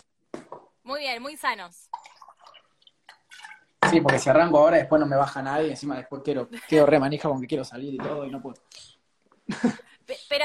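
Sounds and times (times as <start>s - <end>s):
speech: 0.9s - 2.0s, 3.9s - 8.8s
water poured into a glass to drink: 1.9s - 4.0s
laughter: 6.6s - 7.0s, 9.5s - 9.9s.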